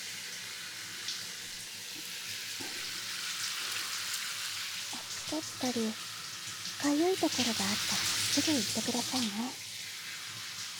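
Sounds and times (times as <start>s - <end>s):
shower water spraying during hair wash: 0.0s - 10.7s
speech: 5.3s - 6.1s, 6.8s - 9.6s
faint water splashes: 6.8s - 9.6s.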